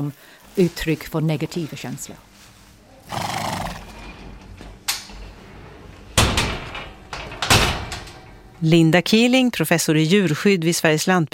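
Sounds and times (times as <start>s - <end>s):
speech: 0.0s - 2.3s, 3.1s - 3.3s, 8.6s - 11.3s
horse whinnying in a stable in Uppsala Sweden: 3.0s - 4.0s
hoof clatter: 3.0s - 4.2s
door banging: 6.1s - 8.5s.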